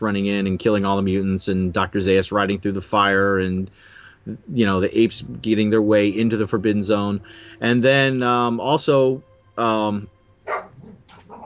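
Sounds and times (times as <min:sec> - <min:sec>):
speech: 0:00.0 - 0:11.4
dog barking and yelping while attacking a cat: 0:10.4 - 0:11.4.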